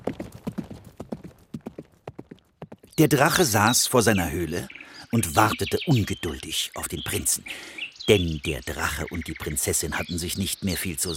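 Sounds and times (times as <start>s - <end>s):
horse galloping toward a forest with its rider: 0.0s - 3.0s
speech: 3.0s - 11.1s.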